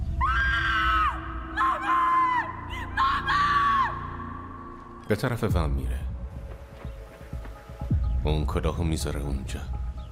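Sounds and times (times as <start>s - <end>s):
girl screaming in high piercing bursts: 0.2s - 4.1s
speech: 5.1s - 6.1s, 8.3s - 9.7s.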